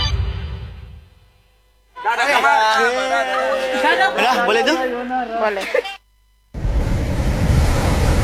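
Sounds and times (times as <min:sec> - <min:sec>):
laughter: 0:02.0 - 0:06.0
speech: 0:04.0 - 0:06.0
ocean waves at Malalayang Beach: 0:06.6 - 0:08.2
wind noise: 0:06.6 - 0:08.2.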